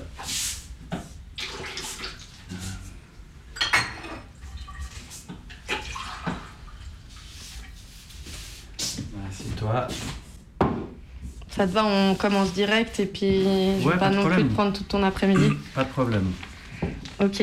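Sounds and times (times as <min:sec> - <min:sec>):
glassware clinking: 0:03.6 - 0:04.3
water poured into a drinking glass: 0:05.7 - 0:07.0
speech: 0:11.6 - 0:16.5, 0:17.2 - 0:17.4.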